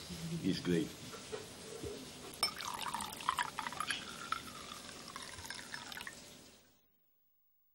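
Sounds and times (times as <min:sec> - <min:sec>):
speech: 0:00.3 - 0:01.1
light clinks of a glass: 0:02.4 - 0:06.1
wine being poured into a glass: 0:02.4 - 0:06.6.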